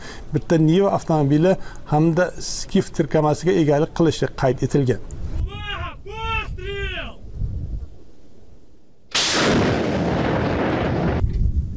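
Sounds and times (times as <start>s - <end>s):
speech: 0.3s - 5.2s
truck-mounted Soviet-era BM-21 Grad multiple rocket launcher firing: 9.1s - 11.5s.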